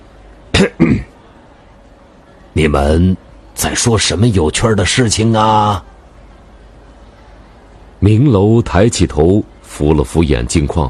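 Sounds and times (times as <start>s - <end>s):
person coughing lightly: 0.5s - 1.1s
speech: 2.6s - 5.9s, 8.0s - 10.8s.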